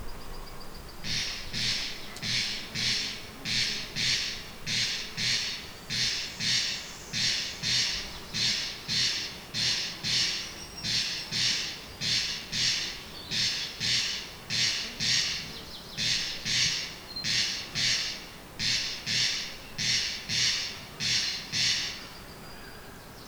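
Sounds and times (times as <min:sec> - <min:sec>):
male Crex crex calling: 0:01.0 - 0:23.2.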